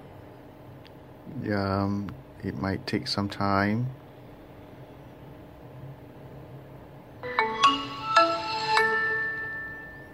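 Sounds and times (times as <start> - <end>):
speech: 1.4 - 4.0
smartphone startup jingle with bright bell-like notes: 7.2 - 10.1.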